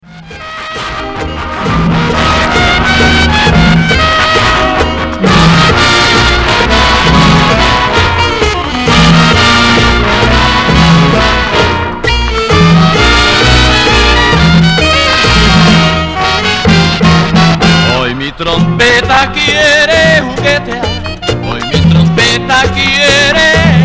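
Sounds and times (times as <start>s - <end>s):
trumpet playing merengue: 0.0s - 23.8s.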